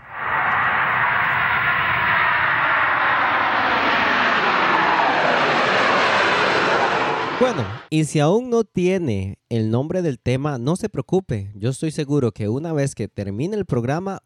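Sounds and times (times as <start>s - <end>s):
airplane engine roar as the plane passes: 0.0s - 7.9s
speech: 7.5s - 14.2s.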